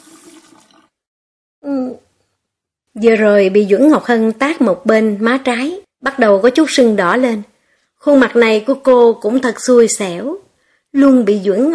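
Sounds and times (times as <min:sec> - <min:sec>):
water running from a tap: 0:00.0 - 0:01.0
speech: 0:03.0 - 0:11.7.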